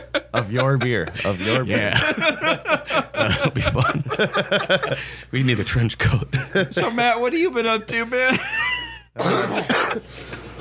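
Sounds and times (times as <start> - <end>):
laughter: 0.0 - 7.1, 8.2 - 10.1
speech: 0.4 - 10.4
rough trailing breath: 5.0 - 5.3, 10.0 - 10.5
person coughing: 9.2 - 10.0.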